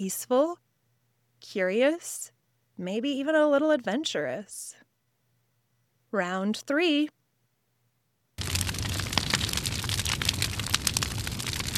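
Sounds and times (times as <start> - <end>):
speech: 0.0 - 0.6, 1.4 - 4.8, 6.1 - 7.2
crackling fire: 8.4 - 11.7.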